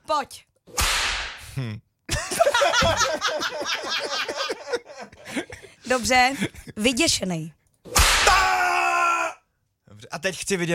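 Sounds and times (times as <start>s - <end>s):
speech: 0.1s - 1.0s, 1.6s - 1.9s, 2.5s - 7.6s, 10.0s - 10.7s
whip crack with a hissing swish: 0.7s - 1.4s, 7.9s - 8.4s
several people laughing: 2.1s - 6.8s.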